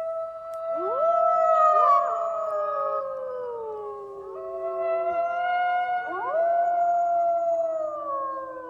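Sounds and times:
chorus of several wolves howling in wavering tones: 0.0s - 8.6s.

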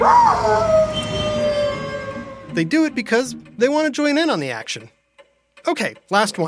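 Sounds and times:
speech: 0.0s - 0.8s, 2.6s - 5.0s, 5.6s - 6.4s
dog howling: 0.0s - 2.6s.

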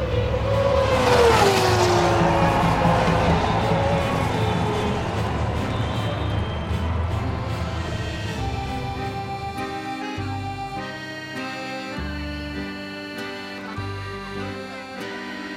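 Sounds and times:
race car engine passing in seventh gear on a circuit at Montefino: 0.0s - 9.4s
sustained roaring race car engine noise: 0.0s - 15.5s.

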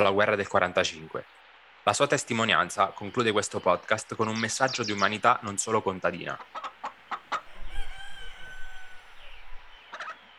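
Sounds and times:
speech: 0.0s - 6.7s
chickens clucking: 6.1s - 10.3s
rooster crowing in a long drawn-out call: 7.4s - 10.1s.

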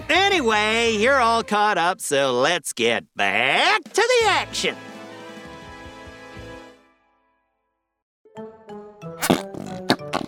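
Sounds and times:
speech: 0.1s - 4.9s
fart putty squelching: 9.2s - 10.2s.

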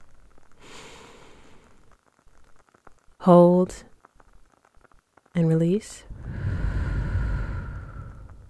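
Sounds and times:
slow deep breath in during a guided breathing exercise: 0.6s - 1.8s, 6.1s - 8.4s
speech: 3.2s - 3.9s, 5.4s - 6.1s.

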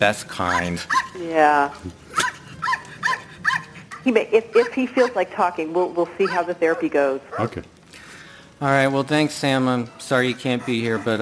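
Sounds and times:
speech: 0.0s - 2.0s, 4.0s - 7.7s, 8.6s - 11.2s
small mixed-breed dog barking: 0.5s - 1.2s, 2.2s - 3.8s.

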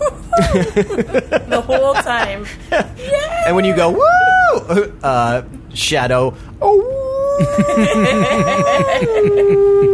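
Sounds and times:
laughter: 0.0s - 3.3s, 7.4s - 9.9s
speech: 0.4s - 9.9s
person imitating a wolf howl: 6.6s - 9.9s.

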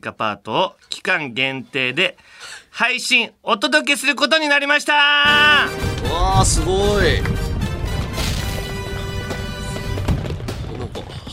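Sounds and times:
speech: 0.0s - 7.4s
fireworks sound effect crackling and popping: 5.3s - 11.3s.

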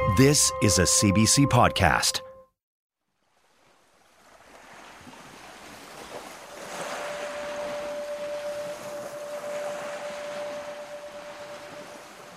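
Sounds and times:
speech: 0.2s - 2.3s
water sloshing and lapping against a small boat: 3.2s - 12.3s
faint sustained whistle-like tone: 6.9s - 12.3s.

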